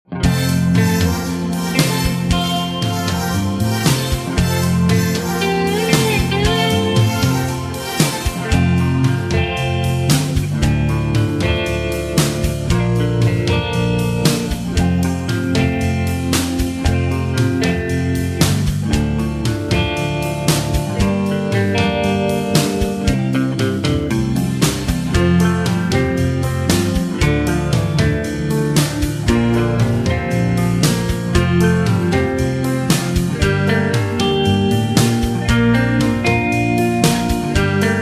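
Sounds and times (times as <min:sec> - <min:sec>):
backing track without backing vocals: 0:00.1 - 0:37.9.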